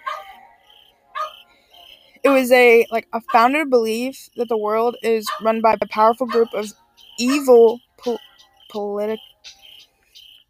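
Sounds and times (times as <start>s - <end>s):
dog barking: 0.0s - 0.4s, 1.2s - 1.5s, 5.3s - 5.6s, 6.3s - 6.6s
speech: 2.3s - 9.6s.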